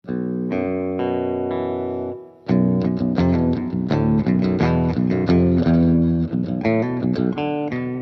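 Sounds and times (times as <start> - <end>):
clean electric guitar chords through an amplifier: 0.0 - 8.0.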